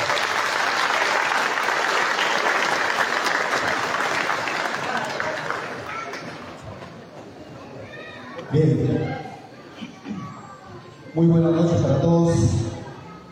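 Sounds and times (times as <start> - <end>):
audience applause: 0.0 - 6.6
speech: 8.5 - 9.2, 11.2 - 12.6.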